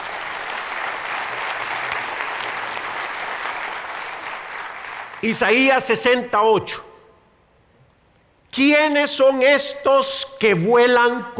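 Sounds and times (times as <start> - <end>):
congregation applauding: 0.0 - 5.9
speech: 5.2 - 6.9, 8.6 - 11.3.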